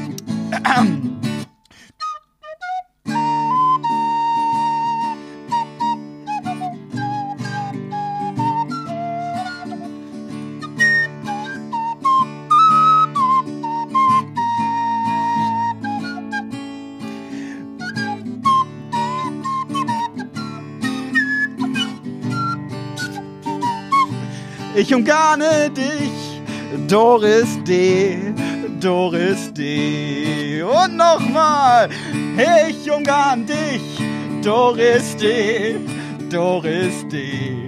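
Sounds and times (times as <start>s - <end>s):
steady instrumental accompaniment: 0.0s - 37.6s
speech: 0.6s - 1.2s, 24.9s - 26.1s, 26.9s - 28.2s, 28.8s - 37.6s
whistled melody in clear pure notes: 1.7s - 37.6s.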